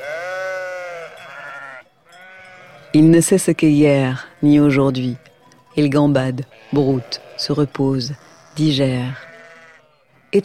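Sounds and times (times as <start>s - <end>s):
sheep or goat from a grazing flock bleating: 0.0s - 3.1s, 3.9s - 5.4s, 6.4s - 10.4s
speech: 3.0s - 9.3s.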